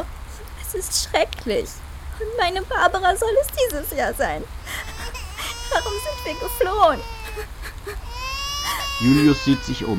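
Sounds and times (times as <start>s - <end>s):
speech: 0.7s - 4.9s, 5.7s - 8.1s, 9.0s - 9.9s
baby crying in a cradle: 4.6s - 9.9s.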